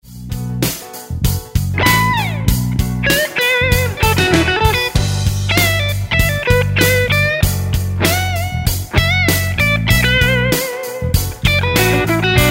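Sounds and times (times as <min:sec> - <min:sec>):
funky guitar lick: 0:00.6 - 0:12.4.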